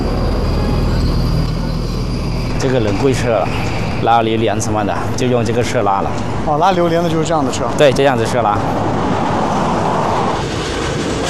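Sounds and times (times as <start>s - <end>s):
train passing with rumble and rattle of rail cars: 0.0s - 11.2s
speech: 2.6s - 9.2s.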